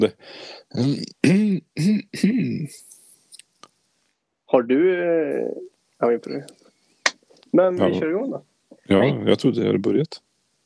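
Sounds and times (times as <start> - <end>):
speech: 0.0 - 2.9, 4.5 - 6.6, 7.5 - 10.2
throaty grunting vocal noises: 0.7 - 2.6.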